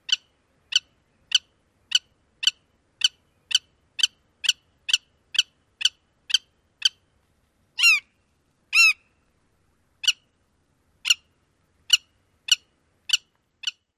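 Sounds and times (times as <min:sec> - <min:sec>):
kip alarm calls: 0:00.0 - 0:07.1, 0:07.8 - 0:09.2, 0:10.0 - 0:10.3, 0:11.0 - 0:11.3, 0:11.9 - 0:13.9.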